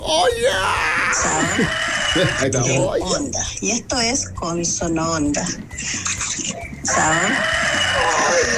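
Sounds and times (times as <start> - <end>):
rhythmic low thumping: 0.0 - 8.5
speech: 0.1 - 6.2, 6.9 - 8.5
rooster crowing loudly: 1.0 - 2.5, 6.9 - 8.5.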